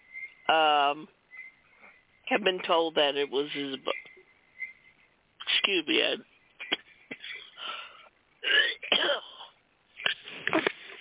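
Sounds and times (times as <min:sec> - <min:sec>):
speech: 0:00.5 - 0:01.2, 0:02.3 - 0:04.1, 0:05.7 - 0:06.3
person coughing: 0:06.6 - 0:07.6, 0:08.4 - 0:10.9.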